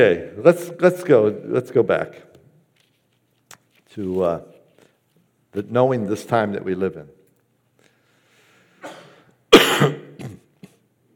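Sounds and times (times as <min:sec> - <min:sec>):
speech: 0:00.0 - 0:02.3, 0:03.9 - 0:04.5, 0:05.5 - 0:07.2
man coughing: 0:08.8 - 0:10.6.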